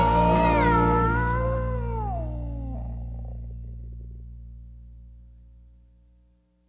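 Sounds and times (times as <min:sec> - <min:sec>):
cat meowing: 0:00.1 - 0:03.4.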